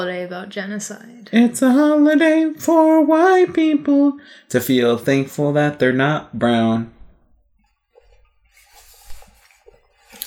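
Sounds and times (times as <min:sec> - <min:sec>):
speech: 0:00.0 - 0:07.0
person drinking water: 0:07.6 - 0:10.2.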